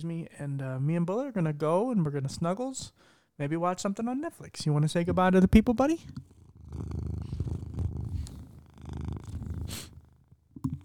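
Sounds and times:
speech: 0:00.0 - 0:07.0
cat purring: 0:06.0 - 0:10.8
soft snuffly sound: 0:07.1 - 0:10.0.

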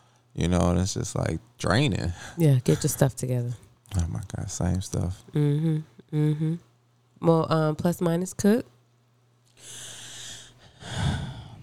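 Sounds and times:
speech: 0:00.4 - 0:08.7
heavy breathing with snort-like rasp: 0:09.5 - 0:11.6.

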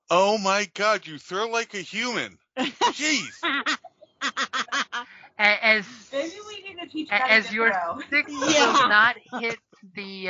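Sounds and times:
speech: 0:00.1 - 0:04.6, 0:05.4 - 0:10.2
laughter: 0:00.1 - 0:05.1, 0:07.3 - 0:09.6
person imitating a chicken with clucks and squawks: 0:08.4 - 0:08.8.

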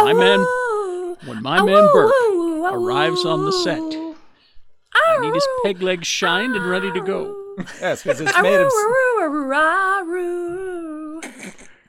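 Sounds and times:
laughter: 0:00.0 - 0:00.5, 0:06.3 - 0:09.1
dog howling along to a song: 0:00.0 - 0:04.2, 0:05.0 - 0:07.5
speech: 0:00.1 - 0:00.6, 0:01.2 - 0:04.0, 0:05.0 - 0:10.5.

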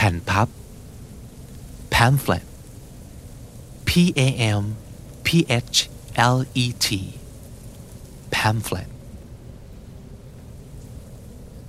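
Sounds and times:
speech: 0:00.0 - 0:00.6, 0:02.0 - 0:02.5, 0:03.9 - 0:07.2, 0:08.3 - 0:08.9
continuous rain in a light storm: 0:00.0 - 0:11.6
gusting wind in a light storm: 0:00.0 - 0:11.6.

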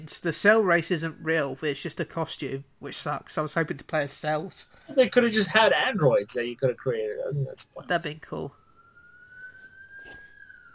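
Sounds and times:
speech: 0:00.0 - 0:08.6
police siren wailing: 0:06.9 - 0:10.7.

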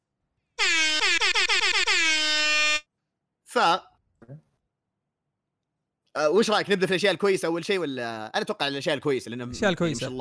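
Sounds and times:
loud blaring air horn: 0:00.6 - 0:02.8
speech: 0:03.6 - 0:04.5, 0:06.2 - 0:10.1.

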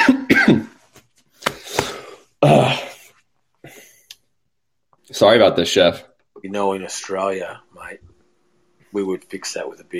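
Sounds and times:
throat-clearing coughs from someone with something stuck in the throat: 0:00.0 - 0:00.8
speech: 0:05.2 - 0:08.1, 0:08.9 - 0:09.9.

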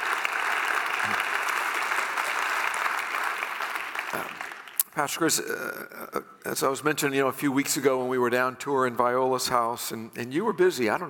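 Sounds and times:
audience applause: 0:00.0 - 0:04.9
speech: 0:05.0 - 0:11.0.

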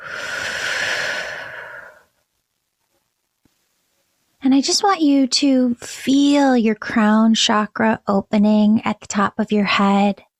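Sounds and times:
deep breath during a guided prayer: 0:00.0 - 0:02.2
speech: 0:04.6 - 0:10.3.

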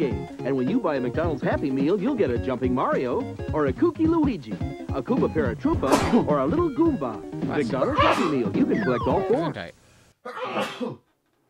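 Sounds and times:
speech: 0:00.0 - 0:11.0
person with allergies and a cold sneezing: 0:05.9 - 0:06.2, 0:08.0 - 0:08.4, 0:10.2 - 0:11.1.

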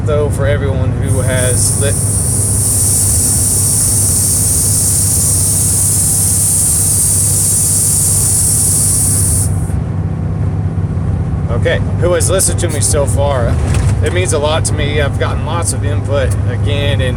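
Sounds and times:
truck engine rumble with low drone: 0:00.0 - 0:17.1
speech: 0:00.1 - 0:02.3, 0:11.5 - 0:17.1
bright hiss: 0:01.1 - 0:09.8.

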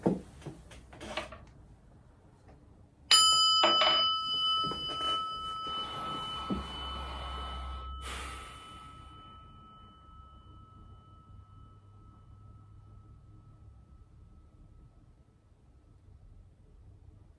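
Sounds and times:
meditation bell ringing: 0:03.1 - 0:15.8
soft breaths: 0:04.5 - 0:10.3.

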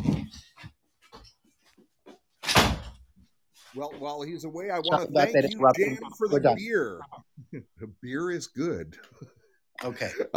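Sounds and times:
door shutting with a loud full-bodied thud: 0:02.4 - 0:03.0
speech: 0:03.8 - 0:10.3.

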